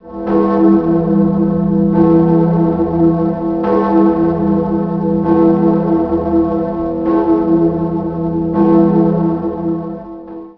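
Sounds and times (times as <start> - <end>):
bells ringing: 0.1 - 10.3.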